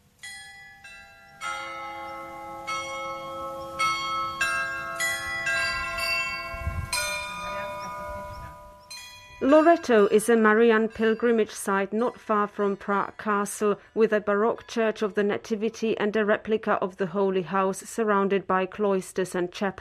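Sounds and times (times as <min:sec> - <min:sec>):
carillon bells playing a slow melody: 0:00.2 - 0:13.8
speech: 0:09.5 - 0:19.7.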